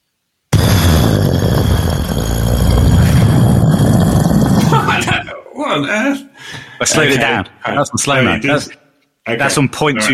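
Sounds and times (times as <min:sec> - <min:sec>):
short breathy voiced sounds: 0:00.5 - 0:05.3
voice imitating a grenade explosion: 0:00.5 - 0:05.3
speech: 0:06.8 - 0:10.1.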